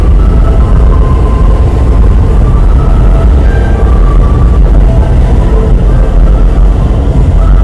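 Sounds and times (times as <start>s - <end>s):
faint tonal whines: 0.0s - 7.6s
heavy low-end roar of a subway train on an underground platform: 0.0s - 7.6s.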